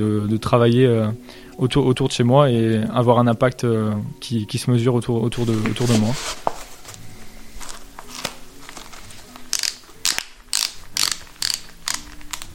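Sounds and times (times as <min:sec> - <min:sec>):
speech: 0:00.0 - 0:06.5
ratchet buckles clicking as shoes are tightened: 0:09.5 - 0:12.5.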